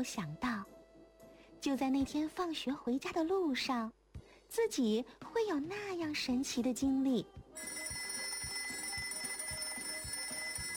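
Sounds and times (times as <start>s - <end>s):
speech: 0.0s - 0.5s, 1.6s - 7.8s
alarm clock ringing: 7.6s - 10.7s.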